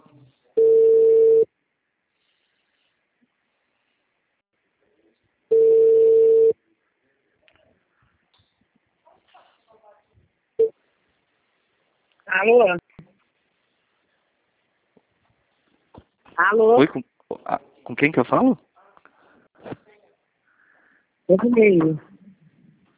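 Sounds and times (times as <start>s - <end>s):
telephone ringing tone on a call: 0.6s - 1.5s, 5.5s - 6.6s
speech: 12.4s - 12.8s, 16.5s - 18.7s, 21.3s - 22.1s.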